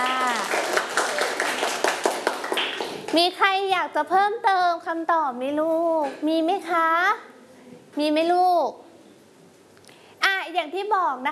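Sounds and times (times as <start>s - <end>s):
group of children clapping for a classmate: 0.0s - 3.2s
speech: 3.1s - 7.3s, 8.0s - 8.8s, 10.5s - 11.2s.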